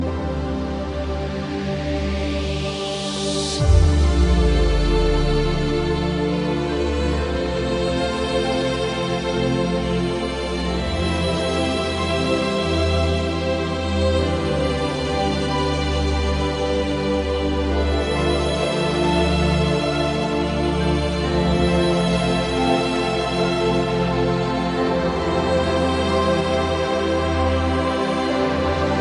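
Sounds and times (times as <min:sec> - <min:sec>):
classical violin trance music: 0:00.0 - 0:29.0.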